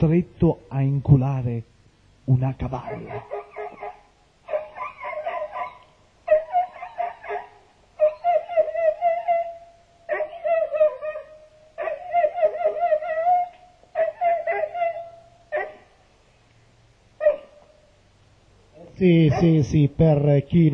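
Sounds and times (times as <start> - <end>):
speech: 0.0 - 1.7, 2.3 - 3.4, 19.0 - 20.7
dog barking: 2.8 - 9.0, 10.1 - 13.0, 14.0 - 15.9, 17.2 - 17.8, 19.2 - 19.7
dog whining and yelping: 2.8 - 15.9, 17.2 - 17.9.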